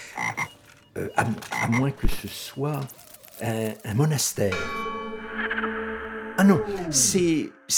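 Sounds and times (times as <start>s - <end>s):
frogs croaking: 0.0s - 4.1s
speech: 1.0s - 5.0s, 6.4s - 7.7s.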